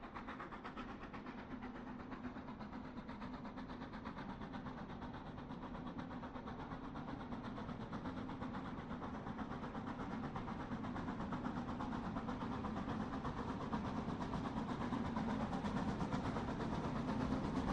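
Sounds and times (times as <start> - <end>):
train chugging past: 0.0 - 17.7.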